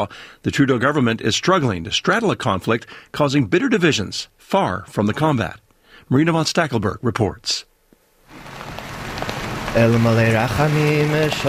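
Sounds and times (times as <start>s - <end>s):
speech: 0.0s - 7.7s, 9.7s - 11.4s
freezing rain pattering on hard surfaces outdoors: 8.2s - 11.4s.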